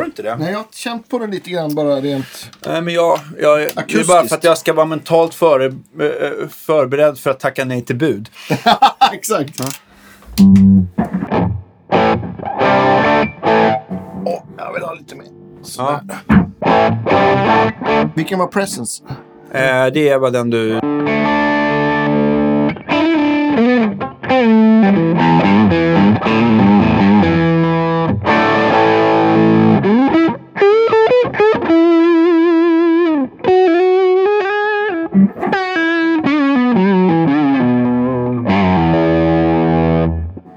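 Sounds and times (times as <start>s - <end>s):
speech: 0.2s - 11.4s, 14.2s - 21.2s
laughter: 3.2s - 4.5s, 8.3s - 9.7s
heavily distorted electric guitar played on the neck pickup: 9.5s - 18.2s, 20.6s - 40.5s.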